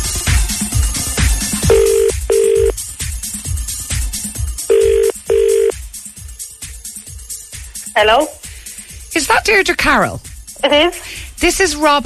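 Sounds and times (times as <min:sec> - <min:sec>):
rhythmic music bed: 0:00.0 - 0:12.0
outgoing phone call ringback tone: 0:01.6 - 0:02.8, 0:04.7 - 0:05.7
speech: 0:08.0 - 0:08.4, 0:09.2 - 0:12.0.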